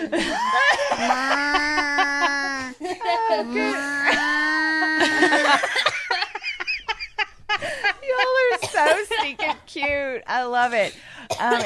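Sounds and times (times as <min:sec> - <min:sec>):
laughter: 0:00.0 - 0:09.9
person imitating a chicken clucking: 0:00.9 - 0:05.5
speech: 0:03.3 - 0:04.3, 0:05.2 - 0:06.0, 0:09.7 - 0:11.6.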